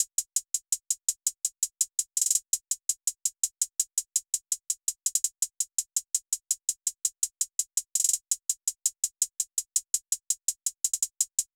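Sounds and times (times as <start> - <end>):
trap hi-hat loop: 0.0 - 11.5.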